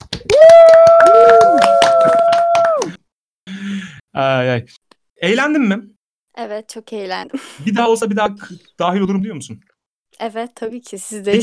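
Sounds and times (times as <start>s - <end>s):
lively applause: 0.0s - 3.0s
sustained high whistle or cheer: 0.3s - 2.9s
speech: 4.2s - 11.4s.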